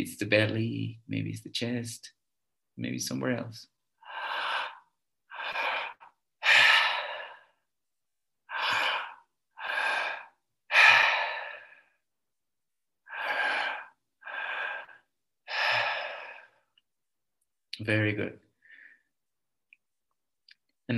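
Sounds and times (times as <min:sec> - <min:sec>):
speech: 0:00.0 - 0:02.2, 0:02.8 - 0:03.7, 0:17.8 - 0:18.5
loud deep breaths during a breathwork exercise: 0:04.0 - 0:07.8, 0:08.4 - 0:12.1, 0:13.0 - 0:16.8, 0:18.6 - 0:19.2.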